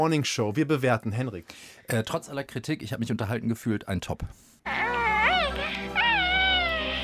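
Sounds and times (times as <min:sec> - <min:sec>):
speech: 0:00.0 - 0:04.8
small cute alien creature cooing: 0:04.7 - 0:07.0.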